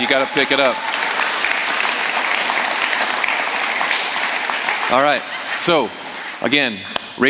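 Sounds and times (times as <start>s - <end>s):
speech: 0.0s - 1.0s, 4.9s - 7.2s
audience clapping and cheering in the rain: 0.0s - 6.6s
laughter: 4.1s - 6.9s.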